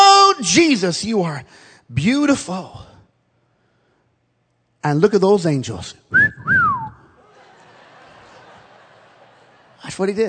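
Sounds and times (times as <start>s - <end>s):
speech: 0.5s - 2.9s, 4.8s - 6.5s, 9.9s - 10.2s
human whistle swooping up and down in pitch: 6.1s - 7.2s
laughter: 7.2s - 10.2s.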